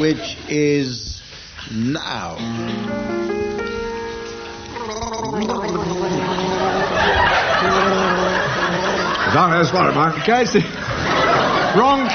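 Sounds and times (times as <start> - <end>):
speech: 0.0 - 1.1, 1.7 - 3.4, 5.4 - 6.2, 9.3 - 10.8, 11.7 - 12.1
two people gargling a song on a comedy game show: 4.7 - 9.4
laughter: 4.7 - 12.1.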